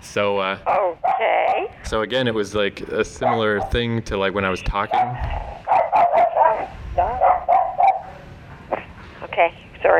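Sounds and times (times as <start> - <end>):
speech: 0.2 - 5.4, 9.4 - 9.9
dog barking with sharp barks and higher yips: 3.2 - 3.9, 4.9 - 8.2.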